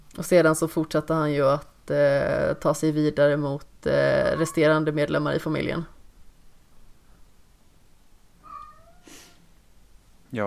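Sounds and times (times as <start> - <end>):
soft steady hiss of room noise: 0.0 - 10.4
speech: 0.2 - 6.0
cat yowling: 4.2 - 4.8, 8.4 - 9.4
short breathy burst: 9.0 - 9.5.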